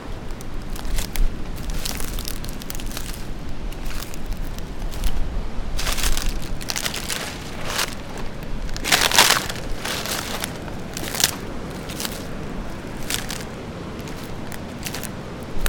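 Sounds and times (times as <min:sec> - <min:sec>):
sabal palm crunching crisply underfoot: 0:00.0 - 0:15.6.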